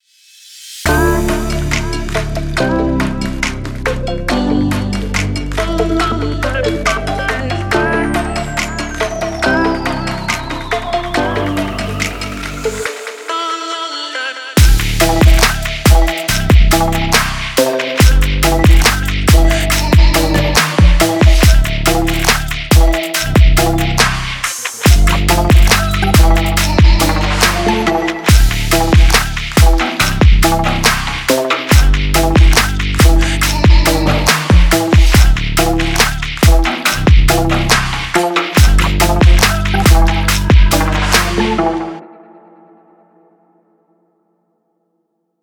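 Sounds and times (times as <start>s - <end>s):
stylish background music: 0.9s - 43.0s.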